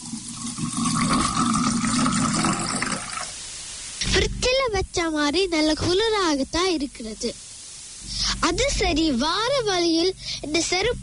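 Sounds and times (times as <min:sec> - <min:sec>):
water pouring into a cup: 0:00.0 - 0:03.4
speech: 0:04.8 - 0:07.4, 0:08.4 - 0:11.0.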